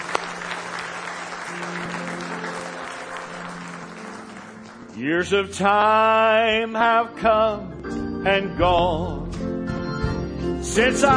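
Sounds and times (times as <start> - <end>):
audience applause: 0.0 - 5.2
speech: 5.0 - 9.2, 10.6 - 11.1.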